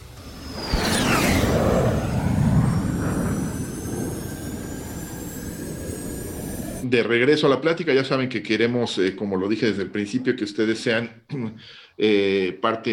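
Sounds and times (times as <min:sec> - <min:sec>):
rocket liftoff sound effect with a descending whistle: 0:00.0 - 0:06.8
speech: 0:06.9 - 0:12.9.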